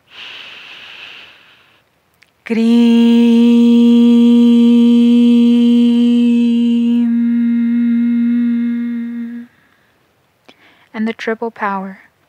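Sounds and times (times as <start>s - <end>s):
deep inhale during a meditative breathing exercise: 0.0s - 1.8s, 6.9s - 10.9s
speech: 2.5s - 3.1s, 11.0s - 12.2s
loud sustained steady tone: 2.5s - 9.5s.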